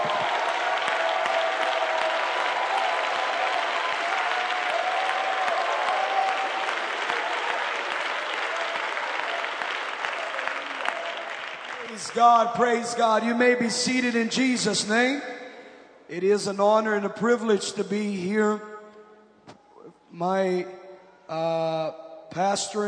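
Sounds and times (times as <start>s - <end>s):
large church audience shouting in praise: 0.0s - 11.3s
large church audience clapping: 0.0s - 13.5s
speech: 12.0s - 15.3s, 16.1s - 18.7s, 20.2s - 22.8s.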